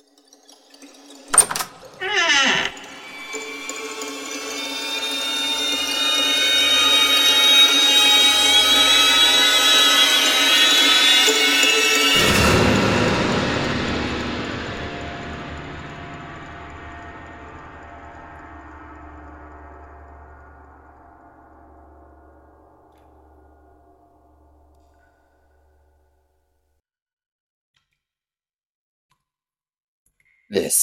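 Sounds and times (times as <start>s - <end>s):
sharp clunks of heavy double doors being pushed open: 1.3s - 2.9s
long loud grinding creak of heavy double doors: 1.3s - 20.3s
rumbling boom: 12.2s - 22.7s.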